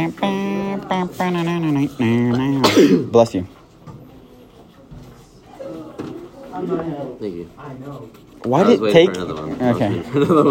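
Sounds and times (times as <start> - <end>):
speech: 0.0 - 3.6, 6.6 - 10.5
sneeze with drawn-out voiced gasping breaths: 2.6 - 3.1
laughter: 9.8 - 10.5.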